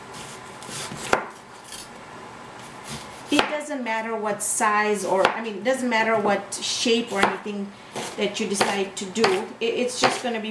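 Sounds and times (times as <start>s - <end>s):
knife slicing onions thinly for a nihari garnish: 0.0s - 1.9s, 2.6s - 3.6s, 7.1s - 10.4s
speech: 3.6s - 10.4s.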